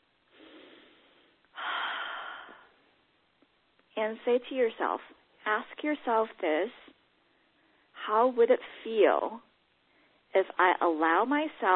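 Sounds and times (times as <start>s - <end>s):
deep breath taken to relieve stress: 0.3s - 2.9s, 9.9s - 10.3s
speech: 4.0s - 7.0s, 8.0s - 9.5s, 10.3s - 11.7s.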